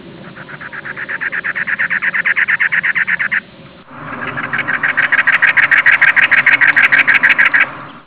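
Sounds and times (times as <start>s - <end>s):
cactus wren: 0.0s - 8.0s.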